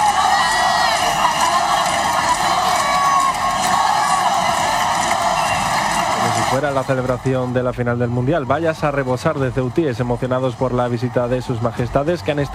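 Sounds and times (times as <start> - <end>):
crowd chanting for national sovereignty: 0.0 - 7.2
large outdoor crowd cheering and shouting: 0.0 - 12.5
people whooping in a crowd: 0.0 - 12.5
whistles from a crowd: 5.3 - 6.2
speech: 6.6 - 12.5.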